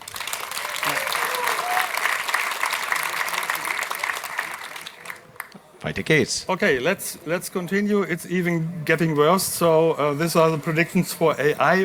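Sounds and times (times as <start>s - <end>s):
faint cheer: 0.0s - 5.6s
room full of people applauding: 0.0s - 5.6s
speech: 5.8s - 11.8s.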